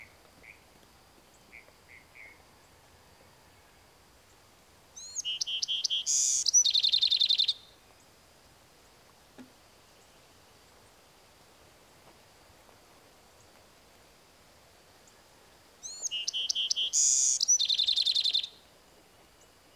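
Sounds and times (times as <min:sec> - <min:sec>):
Bewick's wren singing: 0:05.0 - 0:07.7, 0:15.8 - 0:18.6.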